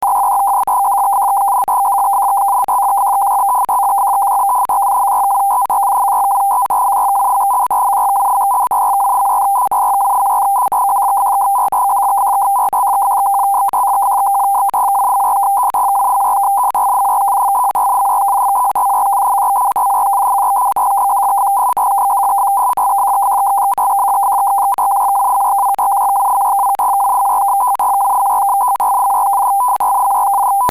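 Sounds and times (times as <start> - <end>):
PACTOR radio data signal: 0.0 - 30.7.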